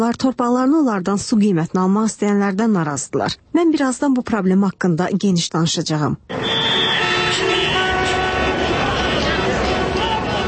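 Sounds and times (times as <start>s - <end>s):
speech: 0.0s - 7.4s
car horns honking in a heavy traffic jam on a road into Baku: 6.3s - 10.4s
engine and road noise in a heavy traffic jam: 6.3s - 10.4s.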